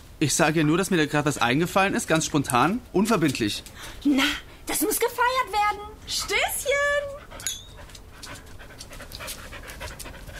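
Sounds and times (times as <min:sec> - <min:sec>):
speech: 0:00.2 - 0:07.5
dancing dog panting: 0:06.1 - 0:10.3.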